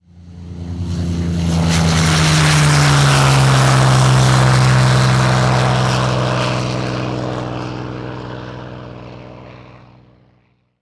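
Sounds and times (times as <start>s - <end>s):
airplane ambience: 0.0s - 10.8s.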